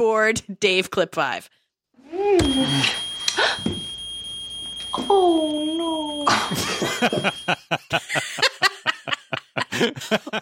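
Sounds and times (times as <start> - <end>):
speech: 0.0 - 1.6, 2.2 - 3.7, 4.9 - 8.8, 9.6 - 10.4
high-pitched electronic alarm tone set off by backing against a wall: 2.4 - 7.6
laughter: 6.1 - 10.4.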